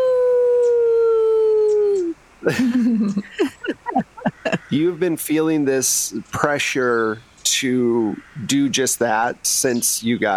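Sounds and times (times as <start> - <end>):
person imitating a wolf howl: 0.0 - 2.2
speech: 2.4 - 3.8, 4.7 - 10.3
laughter: 2.4 - 6.6
person yelping and yipping: 3.1 - 4.8.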